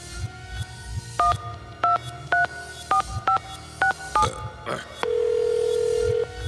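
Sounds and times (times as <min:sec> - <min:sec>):
faint noise: 0:00.0 - 0:06.4
long steady lower telephone tone: 0:05.1 - 0:06.3.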